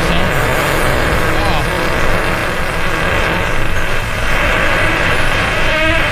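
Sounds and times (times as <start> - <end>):
faint voices: 0.0 - 3.6
loud drawn-out fart sound effect: 0.0 - 6.1.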